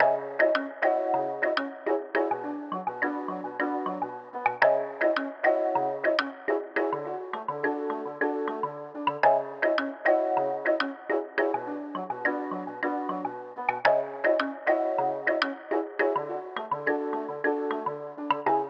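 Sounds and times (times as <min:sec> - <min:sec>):
mallet percussion in A major: 0:00.0 - 0:18.6.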